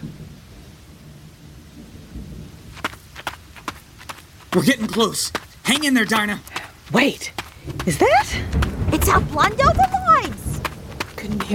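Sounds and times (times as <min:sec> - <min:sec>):
thunder rumbling low and steady: 0:00.0 - 0:11.5
speech: 0:04.6 - 0:10.4, 0:11.2 - 0:11.5
sharp loud thunder cracks: 0:07.6 - 0:11.5.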